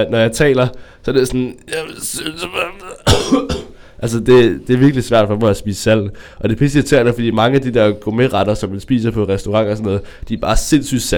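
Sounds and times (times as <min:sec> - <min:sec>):
speech: 0:00.0 - 0:11.1
sharp coughs: 0:01.6 - 0:04.7.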